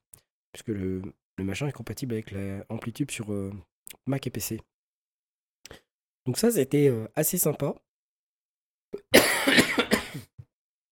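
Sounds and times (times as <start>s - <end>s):
speech: 0.6s - 4.7s, 6.3s - 7.8s
person in a harsh raspy coughing fit: 9.0s - 10.4s.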